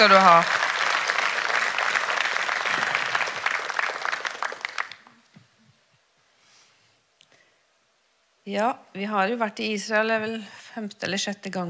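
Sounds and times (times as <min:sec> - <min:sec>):
speech: 0:00.0 - 0:00.6, 0:08.5 - 0:11.6
audience applause: 0:00.0 - 0:05.3.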